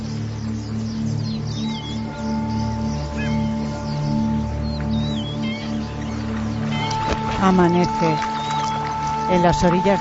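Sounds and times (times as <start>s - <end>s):
flock of birds chirping and calling: 0.0s - 10.0s
steady loud low drone: 0.0s - 10.0s
speech: 7.4s - 8.4s, 9.3s - 10.0s.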